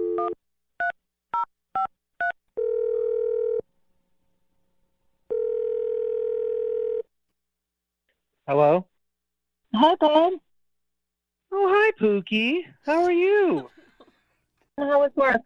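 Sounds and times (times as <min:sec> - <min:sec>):
long steady telephone tones: 0:00.0 - 0:01.0, 0:01.8 - 0:03.7, 0:05.3 - 0:07.1
telephone dial tone: 0:02.6 - 0:03.6, 0:05.3 - 0:07.0
speech: 0:08.5 - 0:08.9, 0:09.8 - 0:10.4, 0:12.0 - 0:13.8, 0:14.8 - 0:15.4.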